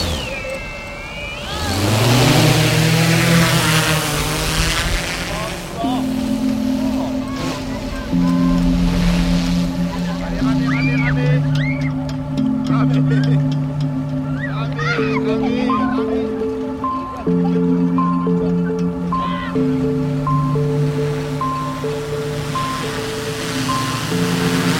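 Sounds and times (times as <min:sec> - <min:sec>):
rushing noise: 0:00.0 - 0:12.6, 0:18.9 - 0:24.7
autopiloted drone motors buzzing taking off from a sandy beach under pine trees: 0:00.0 - 0:24.7.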